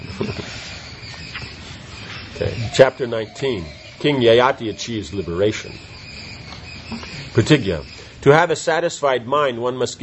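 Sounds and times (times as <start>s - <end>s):
outdoor chorus of frogs croaking: 0.0s - 10.0s
speech: 0.2s - 0.8s, 2.4s - 5.9s, 6.9s - 10.0s.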